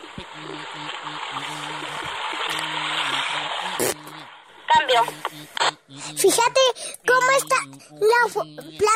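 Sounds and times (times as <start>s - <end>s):
water flowing along an irrigation ditch beside a vegetable garden: 0.0s - 4.6s
speech: 4.9s - 8.9s.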